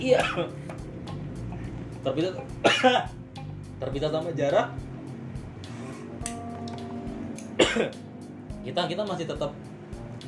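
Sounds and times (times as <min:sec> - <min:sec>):
speech: 0:00.0 - 0:00.7, 0:02.0 - 0:03.2, 0:03.8 - 0:04.8, 0:07.7 - 0:08.0, 0:08.6 - 0:09.6
sharp cough with throaty follow-up: 0:00.1 - 0:00.5, 0:02.6 - 0:03.1, 0:07.6 - 0:08.0.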